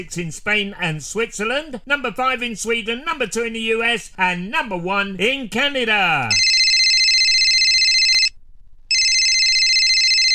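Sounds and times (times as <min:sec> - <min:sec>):
speech: 0:00.0 - 0:06.4
telephone ringing with electronic trill: 0:06.3 - 0:10.3.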